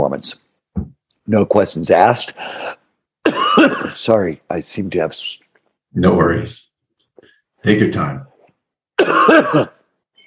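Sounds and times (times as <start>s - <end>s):
speech: 0.0s - 0.4s, 1.3s - 2.8s, 3.6s - 6.7s, 7.6s - 8.3s, 9.0s - 9.7s
coughing and throat clearing: 3.2s - 4.0s, 9.0s - 9.9s.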